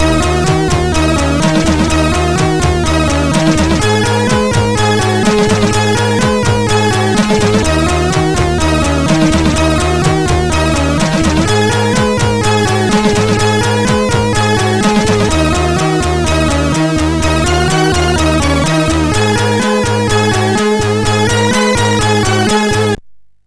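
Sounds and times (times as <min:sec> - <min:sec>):
music on a MOS6581R4 chip: 0:00.0 - 0:23.0.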